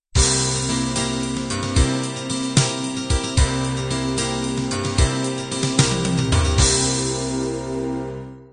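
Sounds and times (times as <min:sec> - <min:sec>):
Celtic ballad ending: 0:00.2 - 0:08.5.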